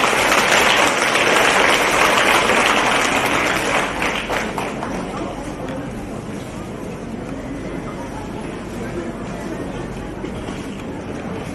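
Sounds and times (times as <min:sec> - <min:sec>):
crowd applauding to welcome a speaker: 0:00.0 - 0:05.5.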